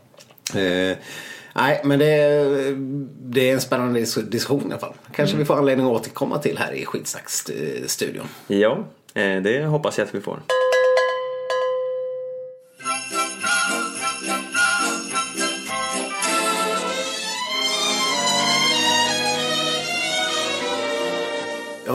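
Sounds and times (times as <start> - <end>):
speech: 0.5 - 10.7
bright ringing bell strikes: 10.5 - 15.8
festive Christmas jingle with jingling bells and chimes: 12.8 - 20.8.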